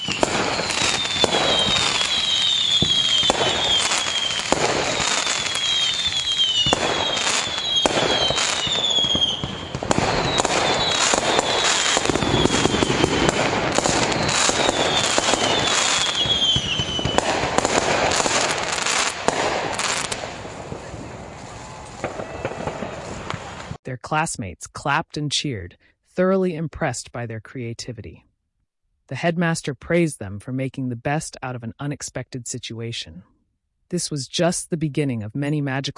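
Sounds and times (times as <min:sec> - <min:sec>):
high descending whistles from fireworks rockets: 0:00.0 - 0:19.1
fireworks display bangs and crackles: 0:00.0 - 0:23.8
speech: 0:24.1 - 0:28.3, 0:29.1 - 0:33.3, 0:33.9 - 0:35.9.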